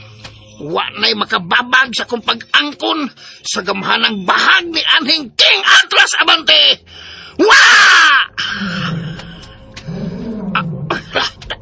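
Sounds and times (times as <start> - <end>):
speech: 0.6 - 8.9
big tiger roaring with deep rumbling growls: 8.4 - 11.2
tiger raspy snorts and huffs: 8.6 - 11.4.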